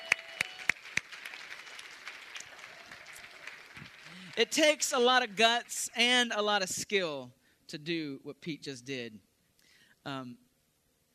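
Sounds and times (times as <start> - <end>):
light scattered applause from a small audience: 0.0 - 5.8
sharp claps: 0.0 - 6.3
speech: 4.4 - 9.3, 10.0 - 10.4.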